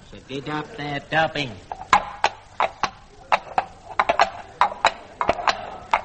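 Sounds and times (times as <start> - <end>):
faint low hum: 0.0 - 6.0
speech: 0.1 - 1.8
horse hooves clip-clopping in a brisk trot: 1.6 - 6.0.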